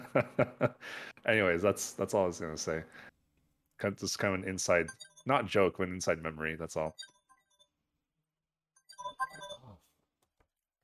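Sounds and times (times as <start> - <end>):
speech: 0.1 - 3.1, 3.8 - 7.1
phone electronic ringtone from an incoming call: 4.8 - 5.6, 8.8 - 9.7.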